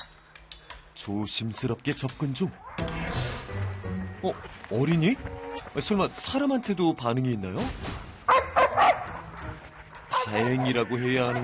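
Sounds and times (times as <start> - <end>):
speech: 1.0 - 2.7, 4.2 - 7.9, 10.3 - 11.4
reactive dog barking aggressively at another dog: 8.3 - 9.3.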